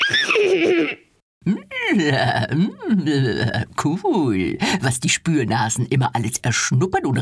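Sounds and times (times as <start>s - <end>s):
person imitating a llama's high-pitched alarm whinny: 0.0s - 2.0s
speech: 0.1s - 7.2s.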